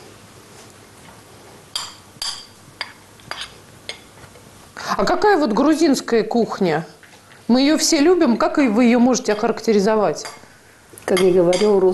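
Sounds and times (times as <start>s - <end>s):
utensils clinking against dishes as chopped onion is added: 1.8s - 4.1s, 11.1s - 11.9s
speech: 5.0s - 10.4s, 11.1s - 11.9s.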